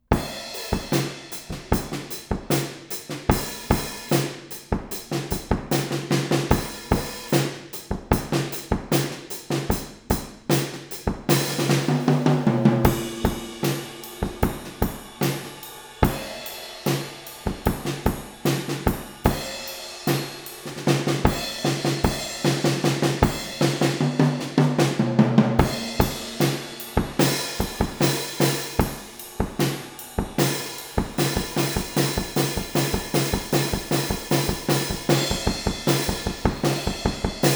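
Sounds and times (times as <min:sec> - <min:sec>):
drums: 0:00.0 - 0:37.5.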